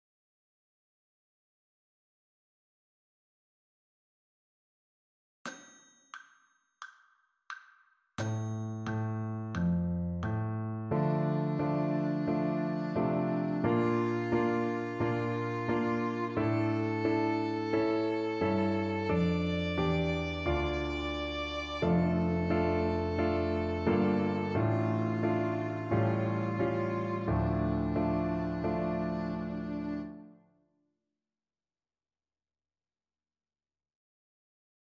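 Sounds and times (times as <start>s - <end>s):
D minor arpeggio: 8.3s - 30.1s.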